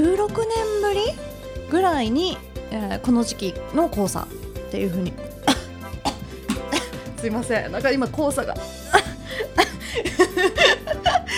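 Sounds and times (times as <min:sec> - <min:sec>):
speech: 0:00.2 - 0:05.3, 0:07.2 - 0:09.1, 0:10.0 - 0:11.3
harsh throaty coughs from throat irritation in an office in Fukuoka: 0:05.4 - 0:07.2, 0:08.9 - 0:10.3
laughter: 0:06.5 - 0:07.1, 0:08.9 - 0:11.3.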